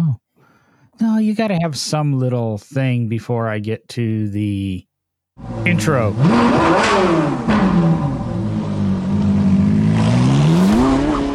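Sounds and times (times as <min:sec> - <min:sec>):
speech: 0:01.0 - 0:08.1
car engine revving loudly: 0:05.4 - 0:11.3.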